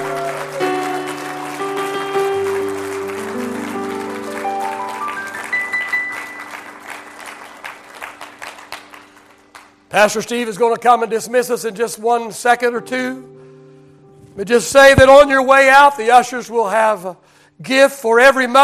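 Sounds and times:
audience applauding: 0:00.0 - 0:10.2
sustained keyboard chords: 0:00.0 - 0:16.9
speech: 0:10.0 - 0:13.3, 0:14.4 - 0:18.6.

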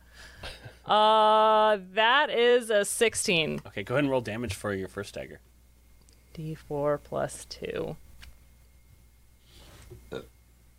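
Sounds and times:
speech: 0:00.9 - 0:05.5, 0:06.4 - 0:08.0, 0:10.1 - 0:10.3
short low throaty burp: 0:10.1 - 0:10.3.

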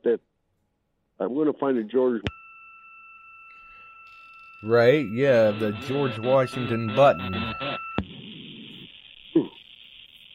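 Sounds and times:
speech: 0:00.0 - 0:00.3, 0:01.3 - 0:02.4, 0:04.6 - 0:07.8
brief radio interference tones: 0:02.3 - 0:09.8
low radio buzzing: 0:02.3 - 0:10.0
crackly radio interference hiss: 0:04.7 - 0:10.3.

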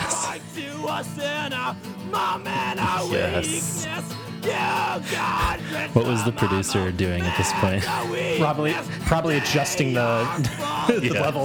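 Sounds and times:
speech: 0:00.4 - 0:11.4
laughter: 0:02.1 - 0:11.4
person screaming a strained sustained cry: 0:02.6 - 0:05.6, 0:07.2 - 0:08.2.

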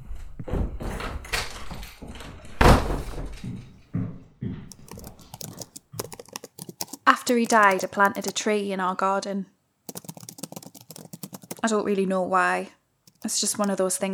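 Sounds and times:
door knocks and rattles: 0:00.0 - 0:05.5
speech: 0:07.3 - 0:09.5, 0:11.6 - 0:14.1.

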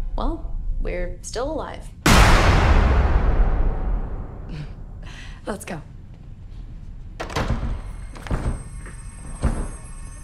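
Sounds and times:
speech: 0:00.2 - 0:03.1, 0:04.5 - 0:05.9
door being forced open with heavy booming impacts: 0:07.2 - 0:09.7.

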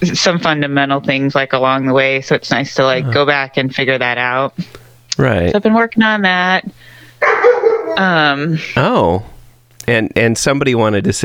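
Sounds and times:
speech: 0:00.0 - 0:11.2
household pet dogs barking and yowling: 0:07.2 - 0:08.2.

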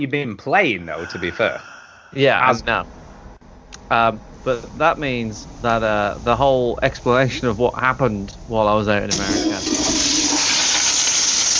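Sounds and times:
speech: 0:00.0 - 0:03.0, 0:03.9 - 0:10.0
toilet flushing: 0:09.1 - 0:11.5.

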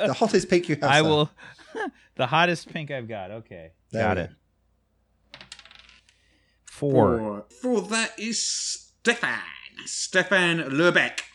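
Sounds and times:
speech: 0:00.0 - 0:04.4, 0:06.8 - 0:11.3
hot pink dice clattering across a hard surface: 0:05.3 - 0:06.2.

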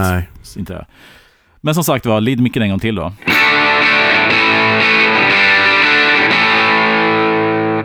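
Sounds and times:
speech: 0:00.0 - 0:04.4
loud distorted electric guitar on bridge pickup playing sustained chords: 0:03.2 - 0:07.8.

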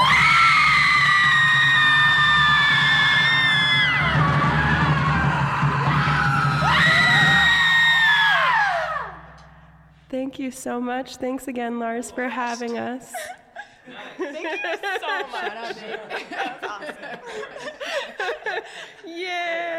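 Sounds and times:
group of people screaming: 0:00.0 - 0:09.4
speech: 0:10.5 - 0:13.3, 0:14.4 - 0:17.7
laughter: 0:13.0 - 0:19.2.

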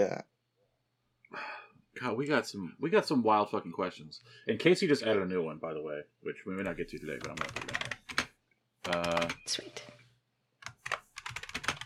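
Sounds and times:
speech: 0:00.0 - 0:00.3, 0:02.0 - 0:07.9, 0:08.9 - 0:10.0
computer keyboard typing: 0:06.6 - 0:10.0, 0:10.6 - 0:11.8.

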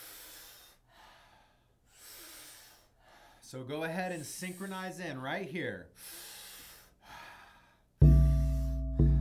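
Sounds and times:
powerful airy breath in through the mouth during breathwork: 0:00.0 - 0:03.5, 0:06.0 - 0:09.0
speech: 0:03.5 - 0:06.3.

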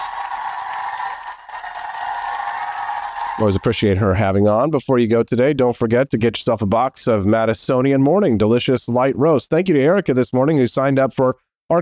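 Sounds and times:
steady dense crowd applause: 0:00.0 - 0:04.0
speech: 0:03.4 - 0:11.7.

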